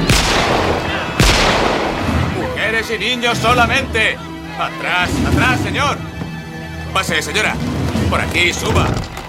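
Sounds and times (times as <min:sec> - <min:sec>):
gunshots fired into the air beside ship's lifeboats: 0:00.1 - 0:02.6
speech: 0:02.9 - 0:06.1, 0:06.9 - 0:09.0.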